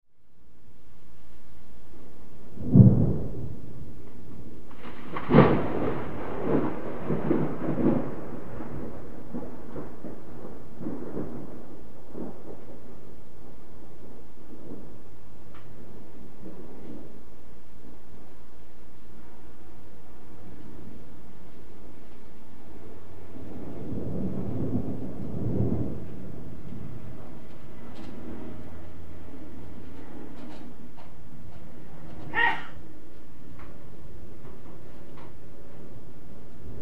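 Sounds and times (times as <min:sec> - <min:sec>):
thunder: 0:02.5 - 0:18.4, 0:19.1 - 0:33.0, 0:33.7 - 0:36.8.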